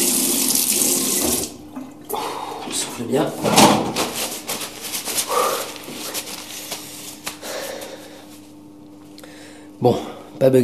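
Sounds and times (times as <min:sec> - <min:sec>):
water running from a tap: 0:00.0 - 0:01.6
speech: 0:03.0 - 0:03.9, 0:09.8 - 0:10.6.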